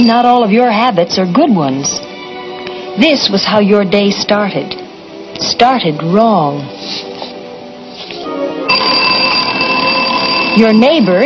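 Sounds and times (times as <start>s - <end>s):
speech: 0.0s - 2.1s, 3.0s - 4.8s, 5.4s - 7.1s, 10.6s - 11.2s
soft tonal chiming: 8.6s - 11.2s
alarm clock ringing with a piercing electronic tone: 8.7s - 11.2s.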